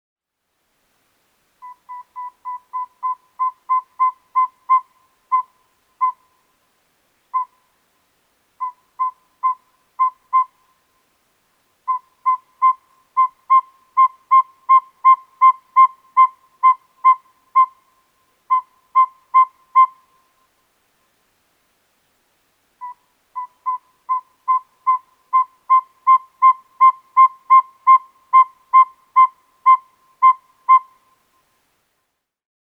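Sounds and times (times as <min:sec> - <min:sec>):
owl call like a sharpened saw: 0:01.6 - 0:06.4, 0:07.3 - 0:07.7, 0:08.6 - 0:10.8, 0:11.9 - 0:20.4, 0:22.8 - 0:31.2.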